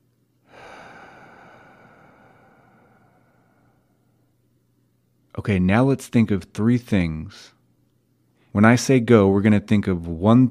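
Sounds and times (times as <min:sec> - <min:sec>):
deep breath in through the nose and out through the mouth during a relaxation exercise: 0:00.4 - 0:04.4
speech: 0:05.4 - 0:07.6, 0:08.5 - 0:10.4.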